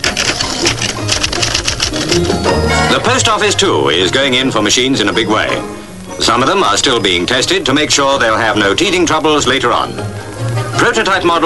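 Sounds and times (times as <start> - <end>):
automatic auto-typist typewriters typing preset sentences: 0.0 - 3.6
speech: 2.2 - 11.4.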